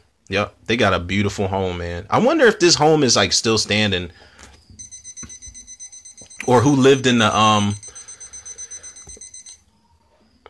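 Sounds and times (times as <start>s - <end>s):
faint low hum: 0.0s - 10.4s
speech: 0.3s - 4.4s, 6.5s - 7.8s
alarm clock ringing: 4.8s - 9.6s.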